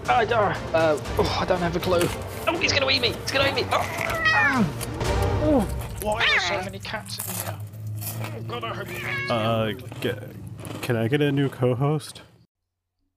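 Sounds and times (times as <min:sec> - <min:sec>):
speech: 0:00.1 - 0:12.3
cats meowing: 0:03.8 - 0:04.8, 0:06.1 - 0:06.7, 0:08.6 - 0:09.5.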